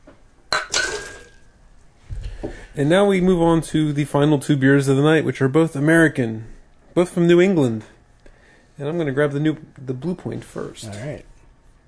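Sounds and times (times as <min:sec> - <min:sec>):
beer glass clinking while being rinsed: 0:00.5 - 0:01.4
speech: 0:02.5 - 0:08.0, 0:08.8 - 0:11.3.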